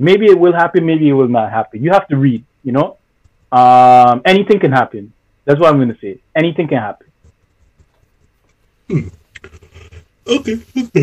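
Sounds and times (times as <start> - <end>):
speech: 0.0 - 7.1, 8.9 - 9.6, 10.3 - 11.0
person yawning from general tiredness: 8.9 - 11.0.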